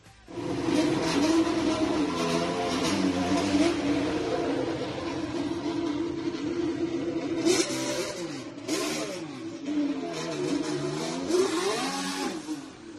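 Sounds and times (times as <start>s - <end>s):
Formula 1 car engine revving leaving the pit box: 0.3s - 12.9s.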